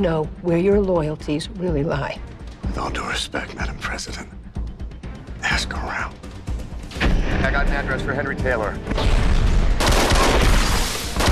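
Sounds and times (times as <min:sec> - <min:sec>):
speech: 0:00.0 - 0:04.4, 0:05.4 - 0:06.3, 0:07.2 - 0:09.4
barrage of gunshots in a TV drama scene: 0:09.0 - 0:11.3.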